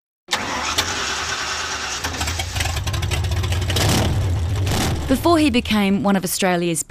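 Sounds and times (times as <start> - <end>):
classic car engine starting and revving at a car and motorbike event in Alice Springs Australia: 0.3 - 5.5
speech: 5.1 - 6.9.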